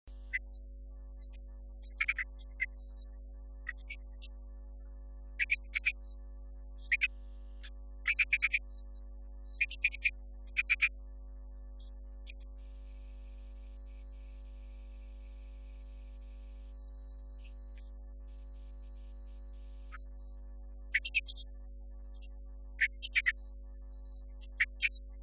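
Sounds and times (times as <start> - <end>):
marsh frog calling on the Romney Marsh: 1.9 - 2.7, 5.4 - 6.0, 6.8 - 7.1, 8.0 - 8.6, 9.6 - 10.9, 20.9 - 21.4, 22.8 - 23.4.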